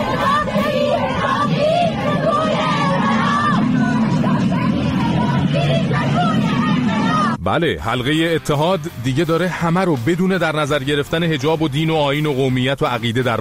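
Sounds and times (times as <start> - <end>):
crowd of women protesters shouting slogans in the streets in Sistan: 0.0 - 7.4
speech: 7.5 - 13.3.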